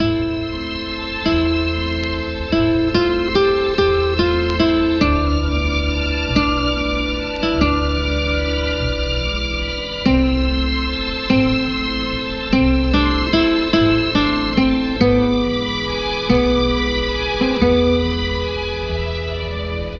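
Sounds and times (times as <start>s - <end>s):
sad guitar loop over strings: 0.0s - 19.9s
sad strings loop: 0.0s - 19.9s.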